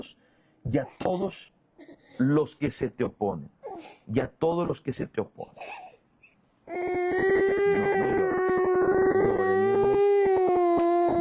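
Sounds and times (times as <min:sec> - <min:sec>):
speech: 0:00.0 - 0:01.6, 0:02.2 - 0:05.9
young child crying loudly: 0:06.7 - 0:11.1.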